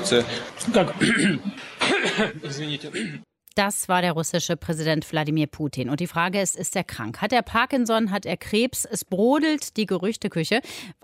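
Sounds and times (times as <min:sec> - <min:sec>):
speech: 0:00.1 - 0:11.0
man coughing in rough throaty bursts: 0:00.9 - 0:03.3
man making voiced chuckle-like sounds: 0:01.0 - 0:03.0.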